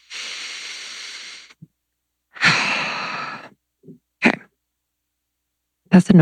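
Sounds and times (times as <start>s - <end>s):
person taking a deep breath: 0.0s - 1.6s, 2.4s - 3.6s
speech: 5.9s - 6.2s.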